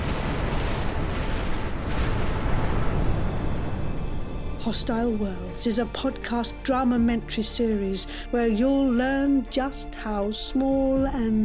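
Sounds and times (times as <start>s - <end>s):
deep roaring blast rumble of an exploding star: 0.0s - 6.0s
speech: 4.7s - 11.4s.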